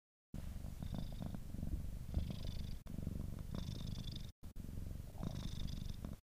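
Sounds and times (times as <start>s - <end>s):
tuxedo cat purring on a lap: 0.4s - 6.2s.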